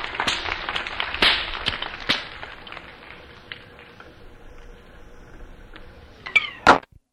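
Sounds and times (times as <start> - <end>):
whip cracking: 0.1 - 2.4.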